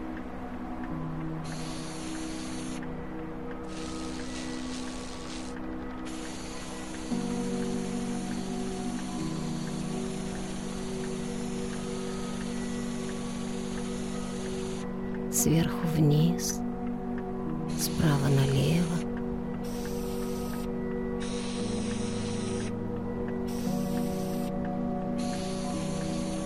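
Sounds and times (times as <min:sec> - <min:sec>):
constant droning motor hum: 0:00.0 - 0:16.2, 0:17.7 - 0:26.4
paint sprayer hissing against a wall: 0:01.4 - 0:02.9, 0:03.7 - 0:14.8, 0:19.6 - 0:22.7, 0:23.5 - 0:24.6, 0:25.2 - 0:26.4
speech: 0:15.4 - 0:16.6.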